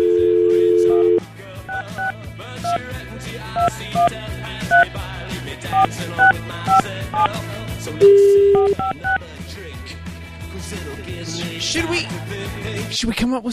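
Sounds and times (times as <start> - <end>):
telephone dial tone: 0.0 - 2.1, 8.0 - 9.1
telephone keypad beeps: 0.1 - 2.1, 3.6 - 4.1, 5.7 - 7.3, 8.0 - 9.2
speech: 5.8 - 9.3, 10.8 - 13.5.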